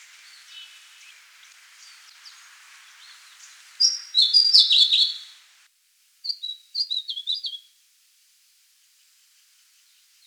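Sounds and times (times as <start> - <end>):
White-spectacled warbler song: 0.0 - 5.4, 6.3 - 7.7
faint hiss: 0.0 - 10.2.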